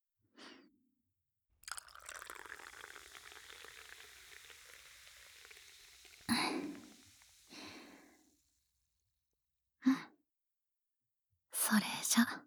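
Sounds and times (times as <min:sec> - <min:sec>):
liquor pouring into a cup: 0:01.6 - 0:08.6
soft breath: 0:04.7 - 0:08.6
speech: 0:11.8 - 0:12.4.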